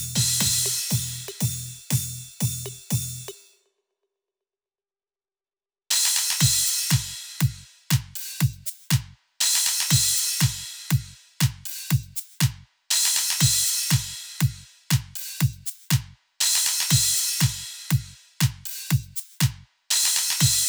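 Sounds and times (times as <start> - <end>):
big room dance music: 0.2 - 1.3, 5.9 - 20.6.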